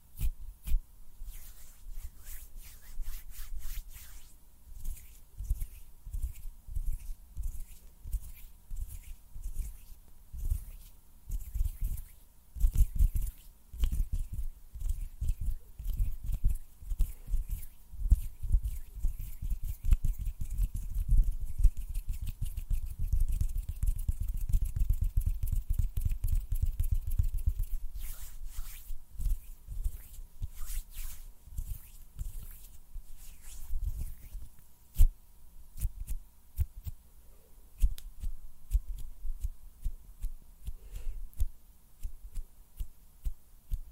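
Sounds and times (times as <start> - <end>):
faint steady hum: 0.0 - 43.9
hands rubbing: 0.2 - 35.1
sharp finger snaps: 37.8 - 38.1.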